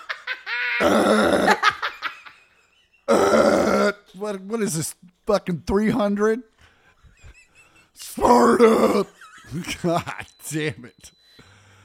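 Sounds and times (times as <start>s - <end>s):
loud raspy burp: 0.8s - 1.7s, 3.1s - 4.1s, 8.2s - 9.2s
speech: 4.2s - 6.5s, 8.2s - 11.2s.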